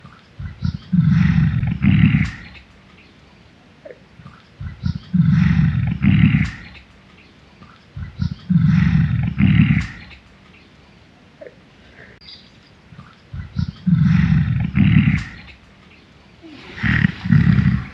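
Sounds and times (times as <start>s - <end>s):
gorilla breathing: 0.1s - 2.7s, 3.8s - 6.9s, 7.6s - 10.3s, 11.4s - 12.2s, 13.0s - 15.6s, 16.4s - 17.9s.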